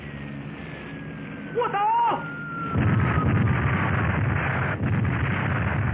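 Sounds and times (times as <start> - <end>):
speech: 1.6 - 2.3
explosions from an aerial bombing raid on a village: 2.7 - 5.9.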